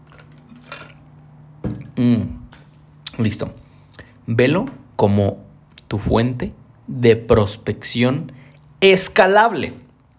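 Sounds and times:
sipping a protein drink: 0:00.0 - 0:01.1
speech: 0:02.0 - 0:02.3, 0:03.2 - 0:03.6, 0:04.3 - 0:09.8.

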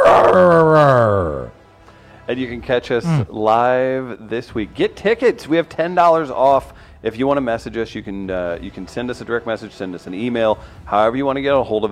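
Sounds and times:
dog howling: 0:00.0 - 0:01.5
speech: 0:02.3 - 0:11.8.

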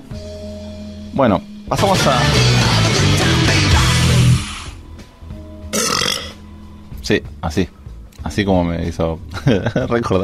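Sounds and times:
speech: 0:01.2 - 0:02.6, 0:07.1 - 0:10.2
burst of noise: 0:03.9 - 0:04.8
loud burp into a microphone: 0:05.7 - 0:06.4
laughter: 0:09.4 - 0:10.1.

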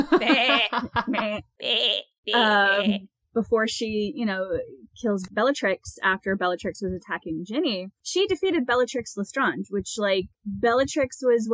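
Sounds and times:
laughter: 0:00.0 - 0:01.4
speech: 0:00.0 - 0:11.5
goat bleat as a censor sound effect: 0:01.6 - 0:03.0.

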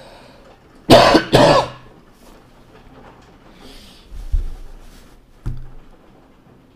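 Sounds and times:
person recovering from COVID-19 coughing: 0:00.9 - 0:01.9.

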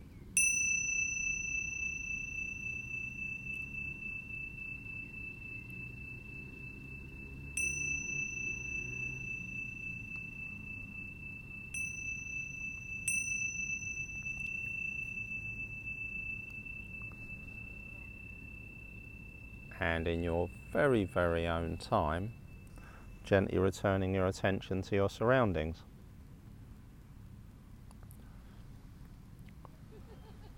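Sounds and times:
soft low hum: 0:00.0 - 0:24.3
meditation bell ringing during a class: 0:00.3 - 0:24.3
speech: 0:19.8 - 0:22.4, 0:23.3 - 0:25.9.

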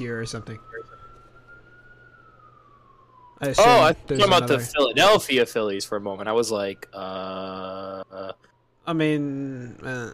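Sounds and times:
speech: 0:00.0 - 0:01.0, 0:03.4 - 0:10.1
police siren wailing: 0:00.0 - 0:10.1.

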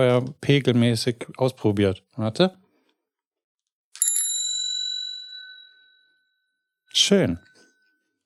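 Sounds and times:
speech: 0:00.0 - 0:02.6, 0:07.0 - 0:07.5
bicycle bell ringing: 0:04.0 - 0:08.2.

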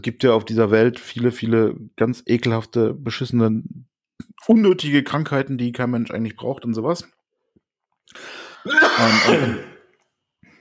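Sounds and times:
speech: 0:00.0 - 0:07.2, 0:08.1 - 0:09.7
brief raspy intake of breath: 0:08.1 - 0:08.7
person coughing after choking on something: 0:08.6 - 0:09.9.

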